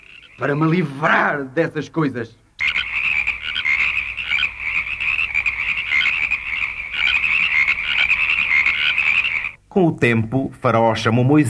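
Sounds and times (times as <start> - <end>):
dense chorus of many frogs croaking: 0.0 - 1.3, 2.5 - 9.6
speech: 0.4 - 2.4, 9.8 - 11.4.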